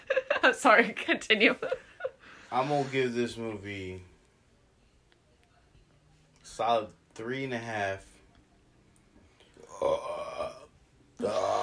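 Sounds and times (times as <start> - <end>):
speech: 0.4 - 1.9, 2.5 - 4.1, 6.5 - 8.1, 11.2 - 11.6
loud drawn-out croaky burps: 9.6 - 11.6.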